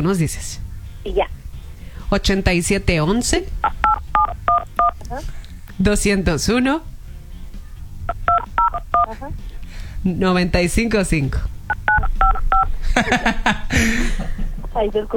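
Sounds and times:
speech: 0.0s - 1.4s, 2.1s - 3.8s, 5.1s - 6.9s, 9.1s - 11.5s, 13.0s - 15.1s
telephone keypad dialing tones: 3.6s - 5.0s, 8.1s - 9.1s, 11.7s - 12.7s
laughter: 9.0s - 9.8s, 12.7s - 15.1s.

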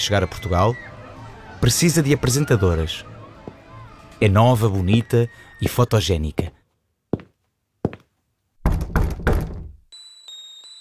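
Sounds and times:
speech: 0.0s - 0.9s, 1.6s - 3.1s, 4.2s - 6.6s
knocking on a door: 8.6s - 9.8s.

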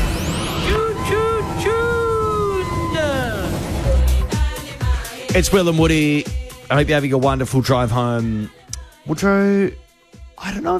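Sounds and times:
busy street traffic rumbling: 0.0s - 4.3s
siren wailing up and down: 0.0s - 4.3s
speech: 5.4s - 9.8s, 10.4s - 10.7s.

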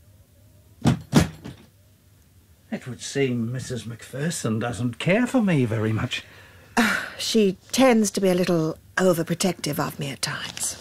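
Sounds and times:
door swinging shut with knocking thuds: 0.8s - 1.7s
speech: 2.8s - 10.7s.

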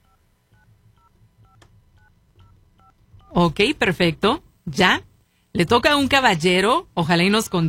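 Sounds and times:
telephone number dialed on a keypad: 0.0s - 3.4s, 7.3s - 7.6s
speech: 3.4s - 7.6s.

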